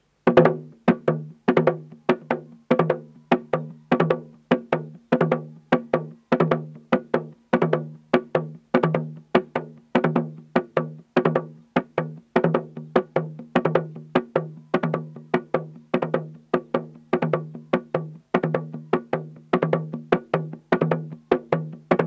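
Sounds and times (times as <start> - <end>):
engalabi drum in Uganda: 0.2 - 22.0.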